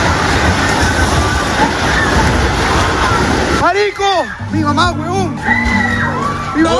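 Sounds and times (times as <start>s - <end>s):
earthquake rumbling: 0.0s - 3.9s
speech: 3.8s - 5.9s, 6.6s - 6.7s.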